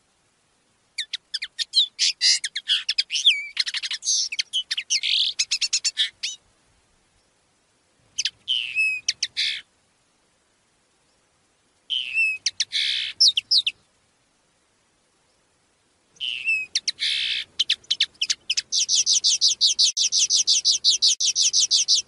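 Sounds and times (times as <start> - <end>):
common linnet singing rapid twitter and nasal trills: 1.0 - 6.4, 8.1 - 9.7, 11.9 - 13.8, 16.2 - 22.0.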